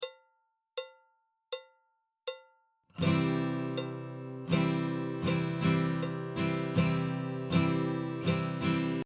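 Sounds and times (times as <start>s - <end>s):
guitar stroke: 3.0s - 9.0s.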